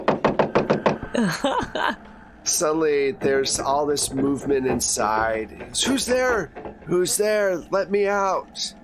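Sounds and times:
knocking on a door: 0.0s - 1.8s, 3.2s - 7.2s
laughter: 0.9s - 2.3s
speech: 1.2s - 8.8s.

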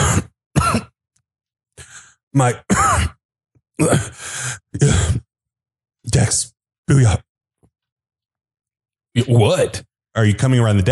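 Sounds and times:
voice imitating harsh rasping coughs of a wounded man: 0.0s - 1.0s, 2.6s - 3.2s
speech: 2.3s - 3.2s, 3.8s - 5.2s, 6.0s - 7.3s, 9.2s - 10.9s.

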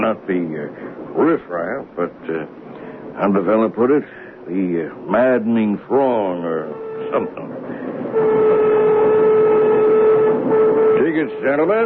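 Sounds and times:
rushing rumble of moving passenger train: 0.0s - 11.8s
speech: 0.1s - 2.6s, 3.2s - 8.6s, 11.2s - 11.8s
passenger train horn blaring: 6.4s - 11.8s.

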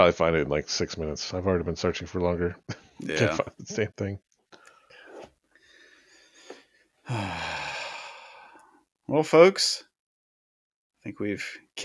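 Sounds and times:
speech: 0.0s - 4.3s, 7.1s - 7.5s, 9.1s - 9.9s, 11.0s - 11.8s
person yawning: 3.0s - 3.4s, 7.1s - 8.6s.

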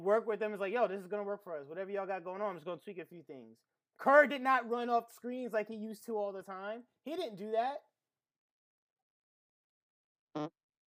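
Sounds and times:
speech: 0.0s - 7.9s, 10.4s - 10.6s
short buzzy fart: 10.4s - 10.6s.

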